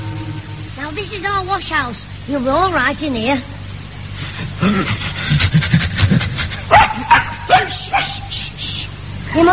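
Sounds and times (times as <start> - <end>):
speech: 1.0 - 3.5, 4.6 - 5.7, 9.3 - 9.5
dog giving short high yips and barks in a wash house: 6.7 - 8.3.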